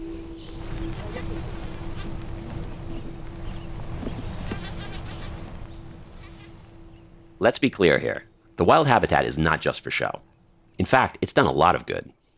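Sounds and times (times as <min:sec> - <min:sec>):
bee buzzing near hives at an orchard in the Northwest: 0:00.0 - 0:07.2
outdoor noise: 0:00.0 - 0:12.3
speech: 0:07.4 - 0:12.2.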